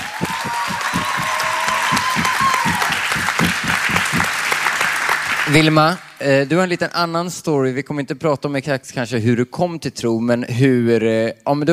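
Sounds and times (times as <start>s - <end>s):
audience applause: 0.0s - 6.2s
speech: 5.5s - 11.7s.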